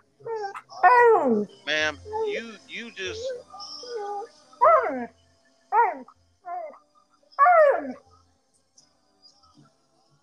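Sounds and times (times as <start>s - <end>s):
dog howling: 0.2s - 2.4s, 3.1s - 5.1s, 5.7s - 6.8s, 7.4s - 8.0s
speech: 1.2s - 4.1s.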